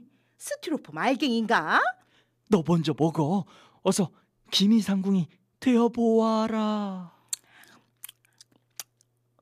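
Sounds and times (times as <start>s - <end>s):
speech: 0.4s - 7.2s
crunchy chewing of a sweet snack: 7.4s - 9.1s.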